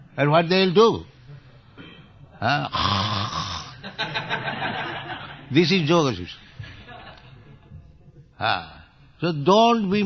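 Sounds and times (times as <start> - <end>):
speech: 0.2 - 1.1, 2.4 - 3.2, 4.0 - 6.4, 8.4 - 10.0
person imitating people snoring while meditating: 2.4 - 3.8
laughter: 3.8 - 5.5, 6.6 - 7.6.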